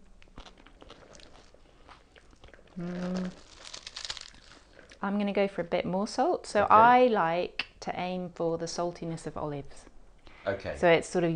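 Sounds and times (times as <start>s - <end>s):
person crunching on a salted crisp raw vegetable while tasting: 0.2s - 5.0s
speech: 2.8s - 3.5s, 5.0s - 11.3s.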